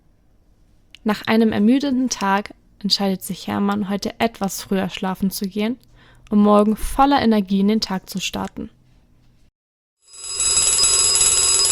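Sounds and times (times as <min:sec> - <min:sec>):
speech: 0:01.0 - 0:08.8
alarm clock bell ringing: 0:10.1 - 0:11.7.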